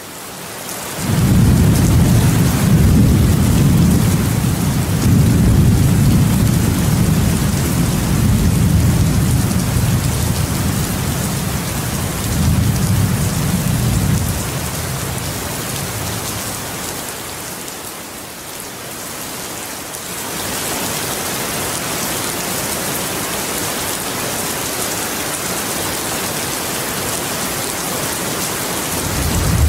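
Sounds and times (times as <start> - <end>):
steady heavy rain: 0.0 - 29.6
deep sustained thunder rumbling: 1.0 - 16.7, 29.0 - 29.6.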